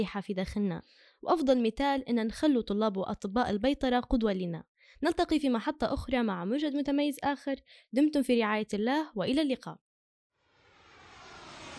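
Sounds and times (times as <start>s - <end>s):
speech: 0.0s - 9.8s
airplane engine roar passing overhead: 10.6s - 11.7s.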